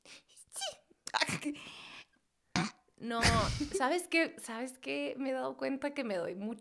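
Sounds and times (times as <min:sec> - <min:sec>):
person sneezing: 0:02.6 - 0:03.8
speech: 0:03.0 - 0:06.6.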